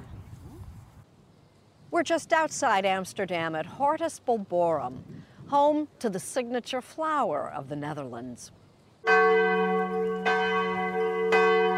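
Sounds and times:
speech: 0:02.0 - 0:09.6
church bells ringing: 0:09.1 - 0:11.7.

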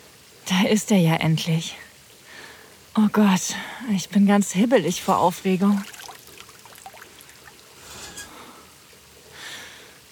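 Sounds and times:
speech: 0:00.5 - 0:01.9, 0:03.0 - 0:06.0
shower water running on skin: 0:03.0 - 0:08.6.

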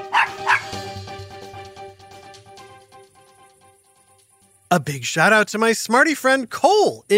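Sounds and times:
dog playing Frisbee barking: 0:00.0 - 0:00.8
speech: 0:04.7 - 0:07.1.

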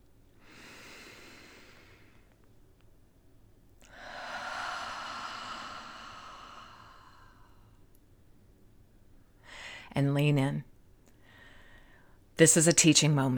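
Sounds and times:
slow deep belly breath: 0:00.4 - 0:02.4, 0:03.8 - 0:07.8, 0:09.4 - 0:09.9
speech: 0:10.0 - 0:10.7, 0:12.4 - 0:13.3.

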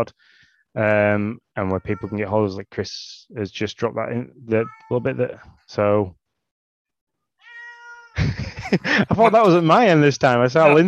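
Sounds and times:
speech: 0:00.0 - 0:06.2, 0:08.2 - 0:10.8
single drawn-out cat meow: 0:01.7 - 0:02.3, 0:04.5 - 0:05.2, 0:07.4 - 0:08.2
laughter: 0:08.2 - 0:09.9, 0:10.6 - 0:10.8.

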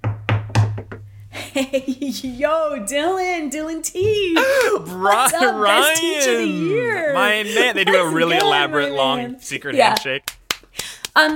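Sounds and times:
knocking on a door: 0:00.0 - 0:01.0
speech: 0:01.6 - 0:10.3, 0:11.2 - 0:11.3
laughter: 0:04.3 - 0:09.4.

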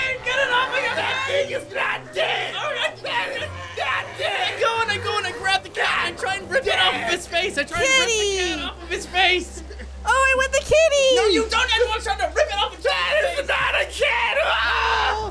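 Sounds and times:
people screaming in terror: 0:00.0 - 0:07.3, 0:12.8 - 0:15.3
laughter: 0:00.0 - 0:15.3.

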